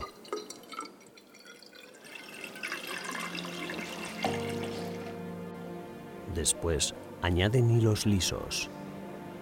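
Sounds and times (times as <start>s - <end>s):
water pouring into a dye cylinder for dyeing yarn: 0.0s - 5.2s
speech: 6.4s - 8.8s.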